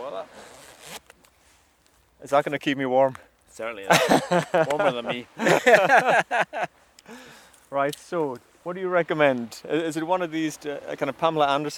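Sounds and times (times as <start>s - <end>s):
wetsuit zipper being zipped up: 0.3s - 1.2s
speech: 2.2s - 11.7s
laughter: 3.8s - 7.2s.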